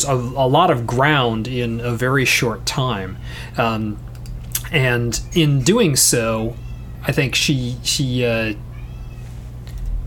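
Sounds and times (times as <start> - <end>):
speech: 0.0 - 4.1, 4.7 - 8.7
low steady hum: 0.0 - 10.0
cat meowing plaintively: 6.4 - 7.1, 8.6 - 9.4.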